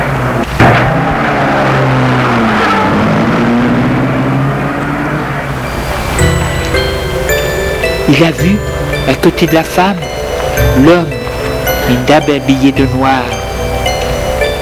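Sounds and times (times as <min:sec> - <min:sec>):
car engine rumbling: 0:00.0 - 0:14.6
road noise hiss: 0:00.0 - 0:14.6
speech: 0:08.2 - 0:10.2, 0:10.8 - 0:11.2, 0:11.9 - 0:13.4.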